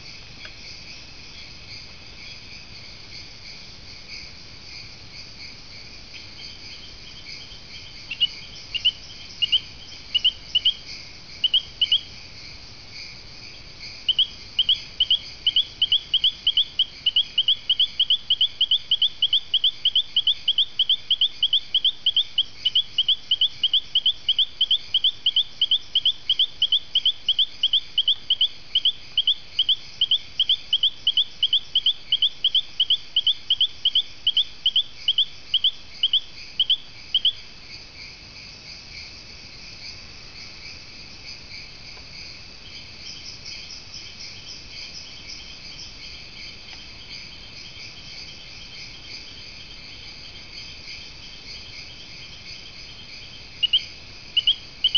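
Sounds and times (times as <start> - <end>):
Allobates hodli frog calling: 4.0 - 54.9.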